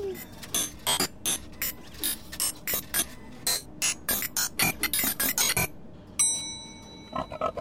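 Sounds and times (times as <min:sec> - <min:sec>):
mechanical machine whirring with ratcheting gears: 0:00.2 - 0:05.7
short ringing ding: 0:06.2 - 0:07.5.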